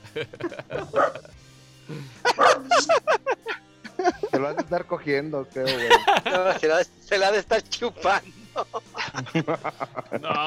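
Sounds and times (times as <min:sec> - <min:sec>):
laughter: 0:00.0 - 0:04.9, 0:05.6 - 0:06.8, 0:08.0 - 0:10.4
speech: 0:00.2 - 0:03.2, 0:04.4 - 0:10.4
dog barking in sharp high yips: 0:02.4 - 0:02.8.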